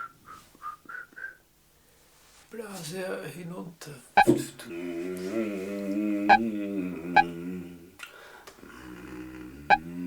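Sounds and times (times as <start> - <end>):
person whistling: 0.0 - 1.5
speech: 2.5 - 7.3.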